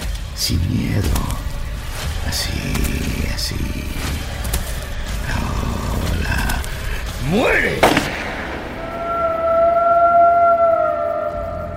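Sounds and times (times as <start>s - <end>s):
speech: 0.4s - 1.4s, 2.2s - 4.4s, 7.2s - 8.2s
large dog's long wavering howl: 5.2s - 11.7s
single sharp gunshot: 7.8s - 9.5s.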